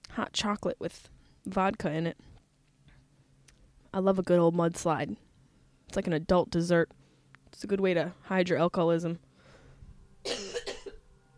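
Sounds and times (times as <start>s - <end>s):
speech: 0.2s - 2.3s, 3.9s - 5.2s, 5.9s - 9.2s
rough hacking cough with a breathy rasp: 10.3s - 11.0s.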